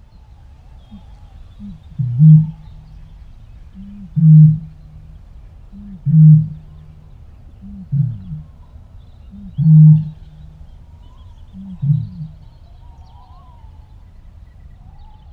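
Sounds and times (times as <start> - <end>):
bittern calling in wetland: 0.9 - 12.6.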